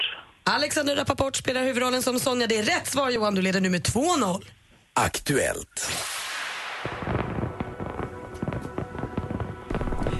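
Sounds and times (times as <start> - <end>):
speech: 0.5 - 6.1
fireworks crackling and popping: 5.8 - 10.1.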